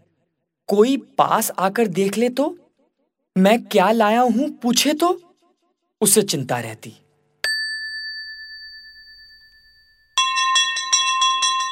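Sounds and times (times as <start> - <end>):
speech: 0.7 - 2.6, 3.4 - 5.2, 6.0 - 7.0
school bell ringing: 7.5 - 11.7.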